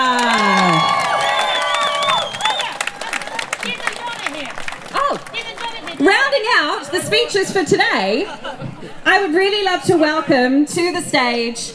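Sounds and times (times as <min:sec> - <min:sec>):
people shouting: 0:00.0 - 0:05.8
audience cheering and whooping: 0:00.0 - 0:06.0
audience clapping: 0:00.0 - 0:06.8
laughter: 0:00.0 - 0:10.0
speech: 0:07.3 - 0:11.7.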